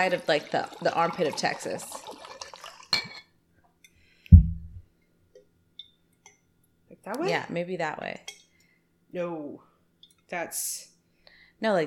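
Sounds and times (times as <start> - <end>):
speech: 0.0 - 2.1, 7.0 - 8.4, 9.1 - 9.7, 10.3 - 10.9, 11.6 - 11.8
liquid poured from a bottle into a glass: 0.0 - 3.2
bright glassy clink: 3.0 - 3.3, 5.8 - 6.4.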